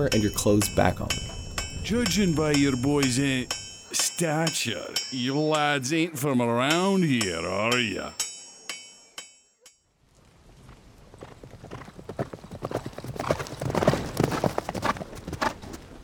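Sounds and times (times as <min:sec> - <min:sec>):
sharp metallic clinks: 0:00.0 - 0:05.7, 0:07.2 - 0:09.8
speech: 0:00.0 - 0:08.3
horse hooves clip-clopping while riding: 0:10.2 - 0:16.0.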